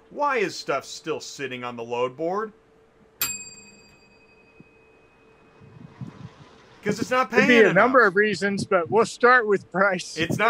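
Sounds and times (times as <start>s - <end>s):
speech: 0.1s - 2.6s, 6.8s - 10.4s
bright bell ding: 3.2s - 5.6s.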